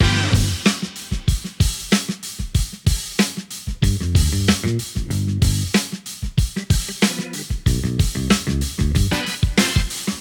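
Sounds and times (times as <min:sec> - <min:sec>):
funk music: 0:00.0 - 0:01.8, 0:03.8 - 0:10.1.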